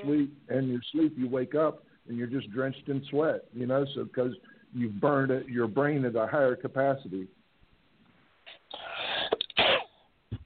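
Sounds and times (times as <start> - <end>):
speech: 0.0 - 7.4
loud sneeze: 9.0 - 10.0.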